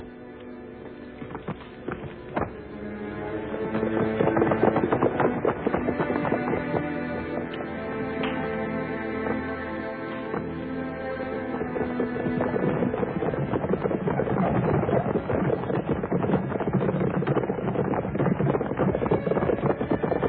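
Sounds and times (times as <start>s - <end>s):
horse hooves galloping: 0.0s - 20.2s.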